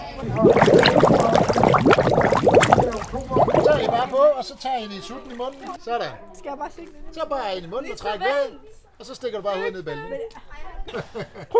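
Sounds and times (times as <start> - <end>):
speech: 0.2 - 1.0, 3.9 - 11.5
underwater bubbles: 0.2 - 4.2.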